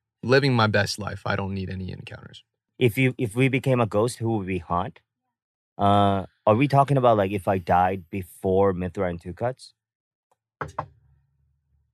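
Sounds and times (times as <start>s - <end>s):
speech: 0.2s - 5.1s, 5.8s - 9.8s, 10.6s - 10.9s
solid knocks on wood: 10.6s - 10.9s.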